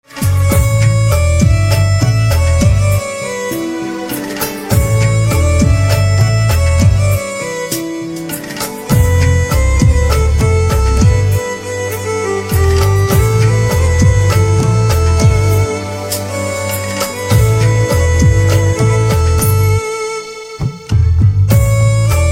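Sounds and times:
harmonica instrumental ringtone: 0.2 - 20.9, 21.5 - 22.2.

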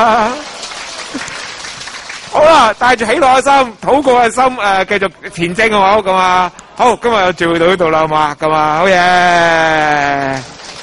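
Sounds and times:
audience applause at a church gathering: 0.0 - 4.2, 9.3 - 10.8
speech: 2.6 - 10.6.

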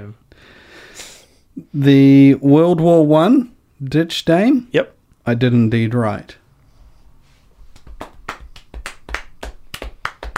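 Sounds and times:
speech: 0.0 - 6.4
light polite hand clapping: 7.7 - 10.3.

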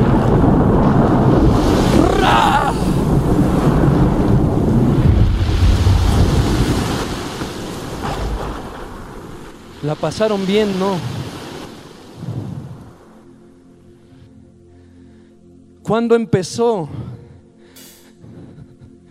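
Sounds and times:
rushing surf: 0.0 - 13.2
stormy wind roaring: 0.0 - 13.6
speech: 10.0 - 11.2, 15.9 - 17.2.

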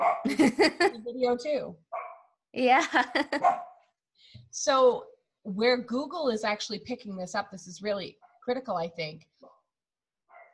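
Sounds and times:
dog barking: 0.0 - 0.3, 1.9 - 2.3, 3.4 - 3.8, 10.3 - 10.5
dog yelp: 0.0 - 0.3, 2.0 - 2.2, 3.4 - 3.7
laughter: 0.3 - 1.0, 2.8 - 3.5
speech: 0.3 - 1.9, 2.6 - 3.6, 4.5 - 9.3.

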